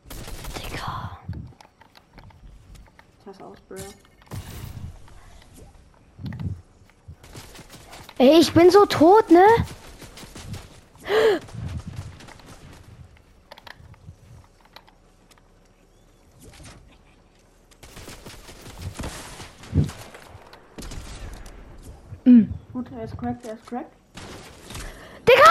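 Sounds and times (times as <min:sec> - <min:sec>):
video game gunfire: 0:00.0 - 0:00.8, 0:07.2 - 0:13.1, 0:17.8 - 0:22.0
speech: 0:03.3 - 0:04.1, 0:08.2 - 0:09.7, 0:23.0 - 0:24.0.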